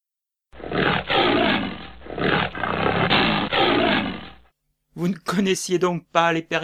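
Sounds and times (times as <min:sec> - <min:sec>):
tiger roaring in deep rough bellowing bursts: 0:00.6 - 0:04.5
speech: 0:05.0 - 0:06.6.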